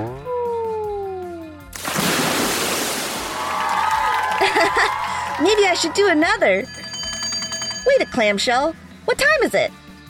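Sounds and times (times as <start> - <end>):
low falling moan-like tone: 0.0 - 1.6
rushing and churning ocean water: 1.8 - 3.6
whale splashing in ocean water: 1.8 - 3.9
laughter: 3.8 - 6.0
speech: 4.5 - 6.8, 8.0 - 9.8.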